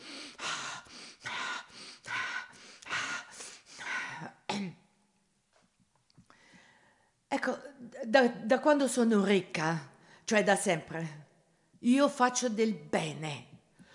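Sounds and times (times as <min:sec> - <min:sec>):
loud deep breaths drawn close to the microphone: 0:00.0 - 0:04.4, 0:06.2 - 0:07.2, 0:13.7 - 0:13.9
speech: 0:07.4 - 0:13.5.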